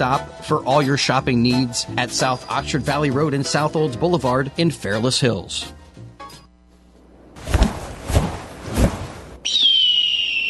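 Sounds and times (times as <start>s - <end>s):
speech: 0.0s - 5.8s
bird call whistle: 9.4s - 10.4s.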